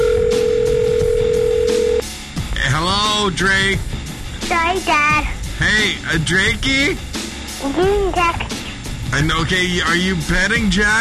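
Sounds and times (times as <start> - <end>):
telephone dial tone: 0.0 - 2.0
speech: 3.3 - 10.9.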